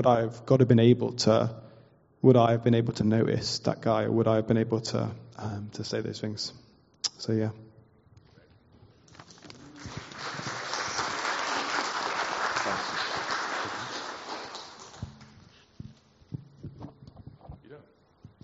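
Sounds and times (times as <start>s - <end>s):
speech: 0.0s - 7.6s
crowd applauding: 9.5s - 15.4s.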